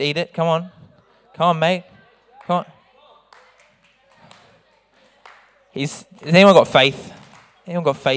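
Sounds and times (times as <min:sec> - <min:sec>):
speech: 0:00.0 - 0:00.8, 0:01.4 - 0:01.9, 0:02.5 - 0:02.8, 0:05.8 - 0:08.1
hand clapping: 0:03.3 - 0:08.1.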